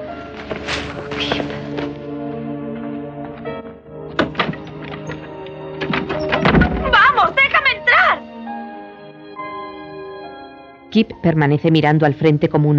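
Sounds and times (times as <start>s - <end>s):
music: 0.0s - 12.7s
kick against an old worm-eaten wooden door: 4.2s - 5.0s, 5.8s - 6.9s
speech: 11.0s - 12.7s.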